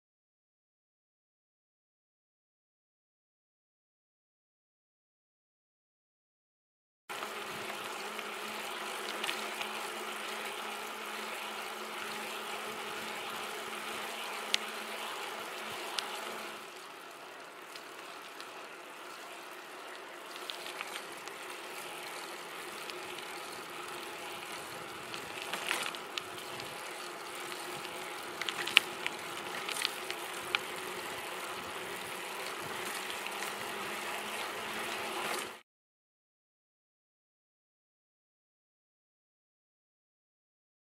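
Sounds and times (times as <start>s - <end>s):
bicycle riding on road: 7.1s - 35.6s.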